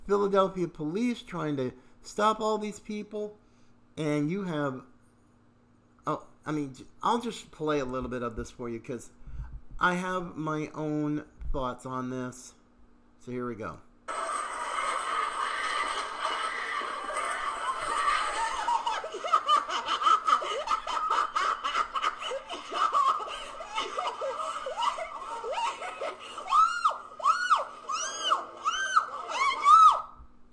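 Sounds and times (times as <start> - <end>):
speech: 0.1 - 3.4, 4.0 - 4.9, 6.0 - 9.2, 9.8 - 12.6, 13.2 - 13.9
girl laughing in giggling bursts in phone video: 14.1 - 30.0
girl screaming high-pitched in phone video: 26.4 - 30.2.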